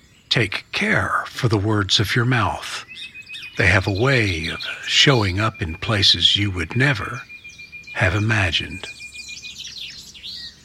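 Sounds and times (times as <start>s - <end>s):
steady low background noise: 0.0s - 10.6s
speech: 0.3s - 2.9s, 3.6s - 7.3s, 8.0s - 9.0s
Great kiskadee calling: 2.2s - 10.6s.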